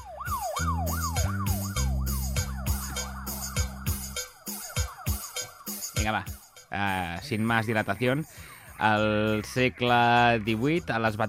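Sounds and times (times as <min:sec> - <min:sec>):
rapid wailing ambulance-style siren: 0:00.0 - 0:06.7
punchy beat with deep bass notes: 0:00.0 - 0:11.2
upbeat cumbia tune: 0:00.0 - 0:11.2
speech: 0:06.0 - 0:11.2.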